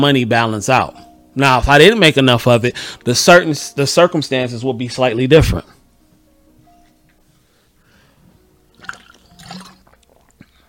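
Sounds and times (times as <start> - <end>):
speech: 0.0 - 5.8
wet slurp of bitter-tasting water: 8.7 - 10.6
longer gulping swallow: 8.8 - 10.6.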